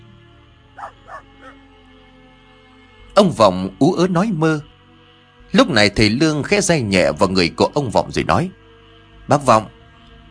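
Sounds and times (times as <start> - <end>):
dog barking beneath a mango tree: 0.8 - 1.6
speech: 3.2 - 4.7, 5.5 - 8.6, 9.3 - 9.8.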